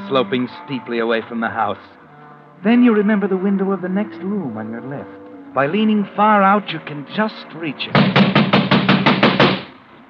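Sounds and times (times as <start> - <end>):
speech: 0.1 - 2.0, 2.6 - 8.4
heavy rapid pounding on a door: 7.9 - 9.7.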